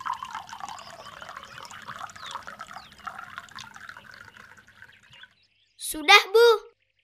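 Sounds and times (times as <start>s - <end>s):
water poured from a glass into a bottle: 0.0s - 5.3s
speech: 5.9s - 6.6s.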